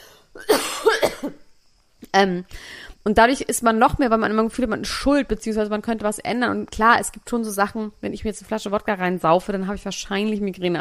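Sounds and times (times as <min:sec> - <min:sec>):
person coughing: 0:00.4 - 0:01.4
speech: 0:01.2 - 0:01.4, 0:02.1 - 0:10.7
quiet breathing: 0:02.5 - 0:03.1.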